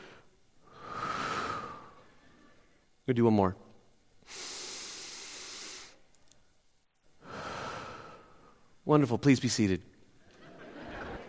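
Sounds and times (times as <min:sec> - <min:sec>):
deep breath in through the nose: 0:00.0 - 0:02.7, 0:04.2 - 0:06.0, 0:07.2 - 0:08.7
speech: 0:03.1 - 0:03.6, 0:08.9 - 0:10.0
laughter: 0:10.2 - 0:11.2.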